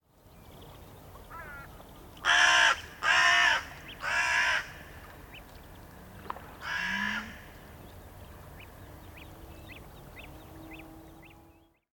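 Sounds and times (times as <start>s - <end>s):
crow cawing in a forest: 1.3s - 4.8s, 6.6s - 7.4s.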